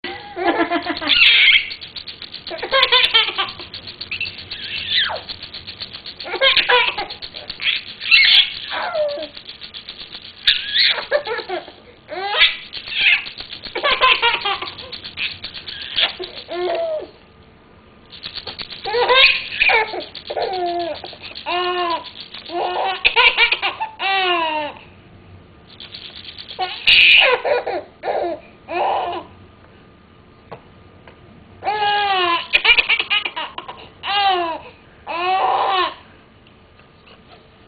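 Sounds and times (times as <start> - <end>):
baby laughing: 0.1 - 1.8, 2.4 - 5.3, 6.2 - 9.4, 10.4 - 17.2, 18.8 - 24.8, 26.6 - 29.3, 31.7 - 36.0.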